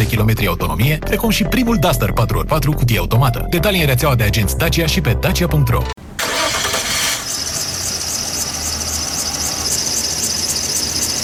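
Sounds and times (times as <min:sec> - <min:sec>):
speech: 0:00.1 - 0:06.0
car engine cranking without catching, starter whirring and squealing: 0:06.1 - 0:11.2.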